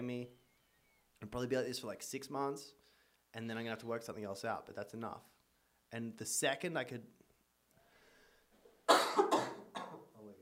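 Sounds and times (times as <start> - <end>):
speech: 1.2 - 5.3, 5.9 - 7.2
short voiced breath: 2.8 - 3.3, 7.8 - 8.6
harsh coughs: 8.9 - 10.1.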